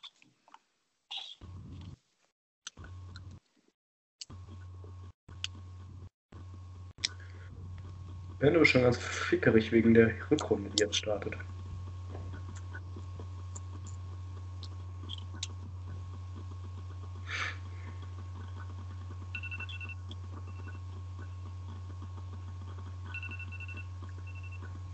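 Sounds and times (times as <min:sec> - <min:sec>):
steady low hum: 0:01.4 - 0:02.0, 0:02.7 - 0:03.5, 0:04.2 - 0:24.9
speech: 0:08.4 - 0:11.6
timer short high electronic beeps: 0:19.4 - 0:20.8, 0:23.1 - 0:24.7.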